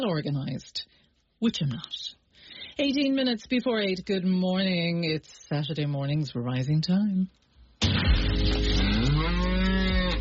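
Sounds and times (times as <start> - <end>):
speech: 0.0 - 2.2, 2.8 - 8.0
dairy cow mooing: 8.7 - 10.1.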